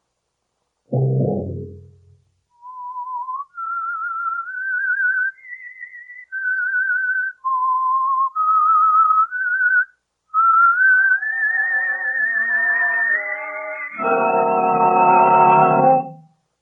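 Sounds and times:
low thud: 0:00.9 - 0:02.2
solo whistled theme melody: 0:02.6 - 0:16.3
richer instrumental tones: 0:11.3 - 0:16.4.

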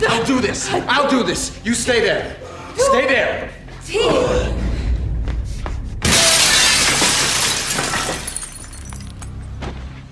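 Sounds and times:
speech: 0:00.2 - 0:04.5
low rumbling background: 0:03.5 - 0:10.0
window glass shattering as someone crashes through: 0:06.0 - 0:09.5
tinkling glass shards and debris: 0:06.7 - 0:09.4.

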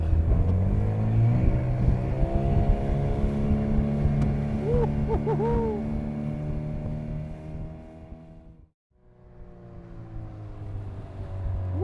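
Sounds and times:
motorboat engine revving as it accelerates toward an island: 0:00.0 - 0:08.3.

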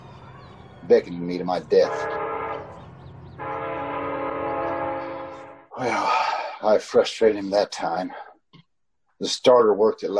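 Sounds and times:
speech: 0:00.9 - 0:02.2, 0:05.8 - 0:08.2, 0:09.2 - 0:10.1
train whistle blasts: 0:01.9 - 0:02.7, 0:03.4 - 0:05.6.

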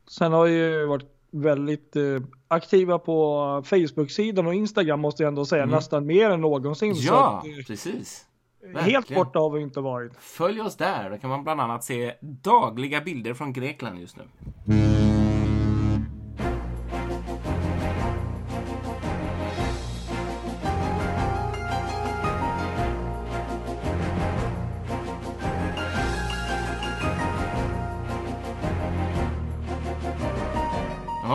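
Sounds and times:
speech: 0:00.1 - 0:15.0
ship's foghorn blasting: 0:14.5 - 0:16.7
orchestral TV theme tune with a steady beat: 0:14.7 - 0:31.3.

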